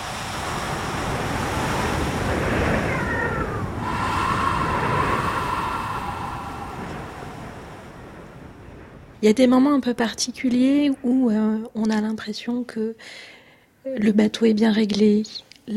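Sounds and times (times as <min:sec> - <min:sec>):
ocean surf rolling up a sandy beach: 0:00.0 - 0:09.2
wind noise: 0:00.0 - 0:11.3
speech: 0:09.2 - 0:15.7.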